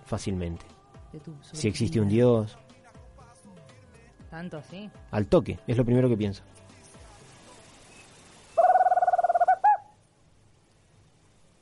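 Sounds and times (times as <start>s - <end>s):
speech: 0.1s - 2.6s, 4.3s - 6.6s
tropical screech owl trilling and hooting: 8.6s - 10.0s.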